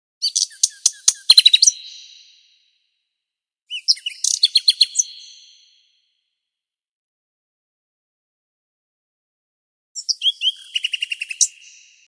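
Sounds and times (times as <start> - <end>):
nightingale singing: 0.2 - 2.7, 3.7 - 6.0, 10.0 - 12.0.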